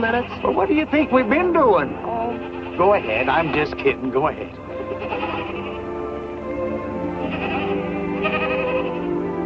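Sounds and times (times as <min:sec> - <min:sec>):
goats bleating: 0:00.0 - 0:00.9, 0:01.9 - 0:06.1, 0:07.0 - 0:09.3
speech: 0:00.0 - 0:04.6.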